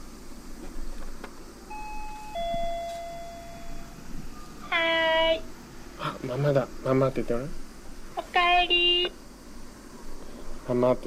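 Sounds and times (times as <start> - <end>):
steady hiss: 0.0 - 11.0
home intercom doorbell two-note chime: 1.7 - 4.6
speech: 6.4 - 7.6, 8.4 - 9.2, 10.7 - 11.0.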